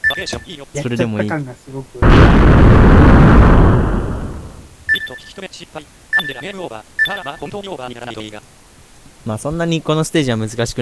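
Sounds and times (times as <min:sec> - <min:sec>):
speech: 0:00.1 - 0:04.2, 0:04.9 - 0:08.6, 0:09.2 - 0:10.8
video game explosion sound effect with rumble: 0:02.0 - 0:04.7.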